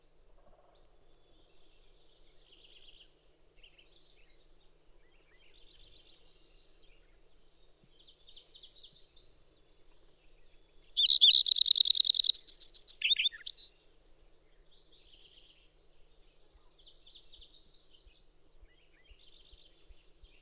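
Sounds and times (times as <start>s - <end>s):
bird song: 0.0s - 20.4s.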